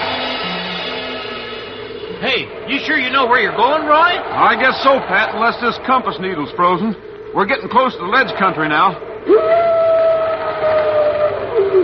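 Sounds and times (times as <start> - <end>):
speech: 2.2 - 9.5
wolf howling: 9.2 - 11.8.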